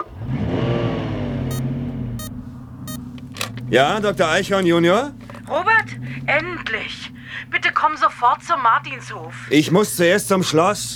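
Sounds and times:
jeep engine starting, revving and settling into a steady rumble: 0:00.0 - 0:10.9
speech: 0:03.7 - 0:10.9.

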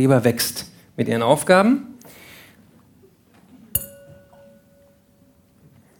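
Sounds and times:
speech: 0:00.0 - 0:01.9
quiet room noise: 0:00.0 - 0:05.9
glasses clinking, one holding grape juice: 0:03.8 - 0:05.9.

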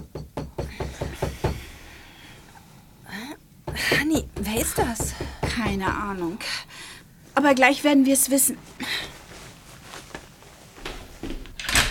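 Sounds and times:
rapid insistent knocks on a wooden cabin door: 0:00.0 - 0:01.7, 0:03.7 - 0:06.2
speech: 0:04.1 - 0:06.8, 0:07.4 - 0:09.0.

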